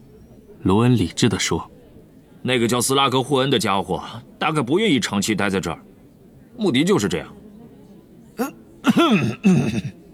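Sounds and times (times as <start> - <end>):
speech: 0.6 - 1.8, 2.4 - 5.9, 6.6 - 7.4, 8.4 - 10.0
throat clearing: 8.4 - 10.0.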